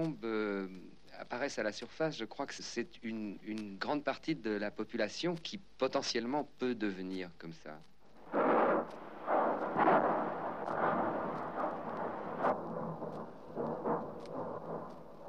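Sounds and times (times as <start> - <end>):
speech: 0.0 - 7.9
deep rumbling volcanic explosions booming: 8.1 - 15.2
continuous roar of volcanic eruption: 8.2 - 15.2.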